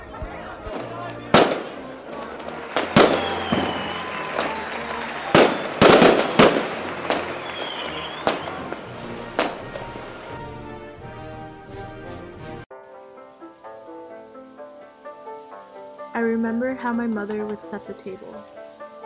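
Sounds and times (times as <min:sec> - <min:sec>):
faint crowd voices murmuring: 0:00.0 - 0:09.5
firework whistling upward at night: 0:00.7 - 0:10.5
speech: 0:16.5 - 0:18.6.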